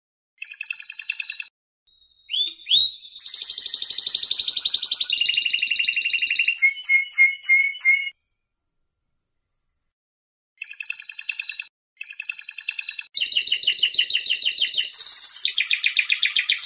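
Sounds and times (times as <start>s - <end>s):
canary singing: 2.3s - 8.1s, 10.6s - 16.6s.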